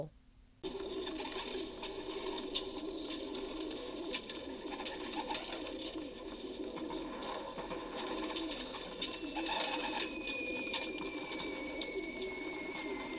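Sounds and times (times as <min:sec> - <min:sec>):
flock of pigeons cooing: 0:00.6 - 0:13.1
faint thin whistle gliding downward: 0:08.9 - 0:13.1.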